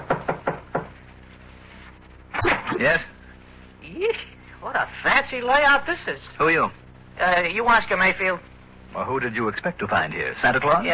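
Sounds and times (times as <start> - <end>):
sharp knocks on a door: 0.0 - 0.9
speech: 2.8 - 3.1, 4.0 - 10.9.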